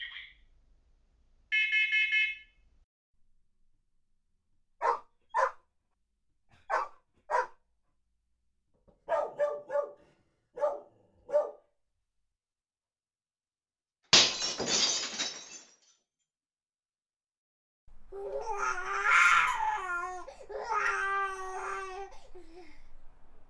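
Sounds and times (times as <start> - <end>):
smoke alarm beeping: 1.5 - 2.5
dog barking: 4.8 - 5.6, 6.5 - 7.6, 8.9 - 11.8
glass breaking: 14.1 - 16.0
baby crying: 18.0 - 23.4.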